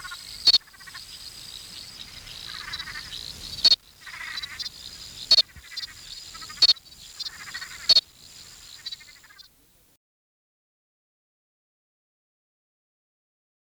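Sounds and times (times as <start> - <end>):
Chirping froglet Crinia deserticola clicking chirps: 0.0 - 9.6.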